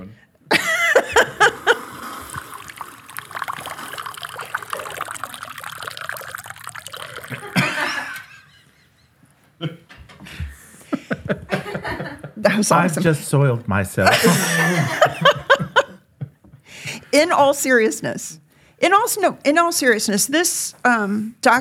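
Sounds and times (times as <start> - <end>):
laughter: 0.5 - 2.6, 7.2 - 10.0, 10.9 - 13.3, 14.0 - 16.4
water pouring: 0.6 - 8.4
speech: 12.5 - 15.4, 17.2 - 18.4, 19.1 - 21.5.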